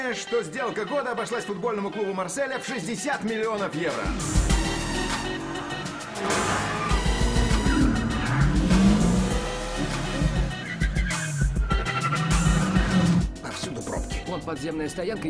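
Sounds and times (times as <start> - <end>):
speech: 0.0 - 4.7, 14.3 - 15.2
taxi car speeding with engine loudly revving through gear changes: 4.0 - 13.4
dense roar of road noise: 4.1 - 13.3.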